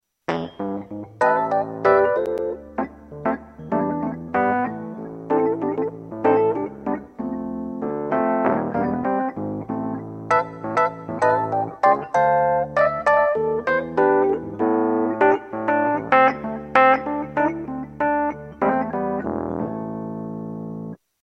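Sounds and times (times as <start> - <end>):
electric piano: 0.3 - 21.0.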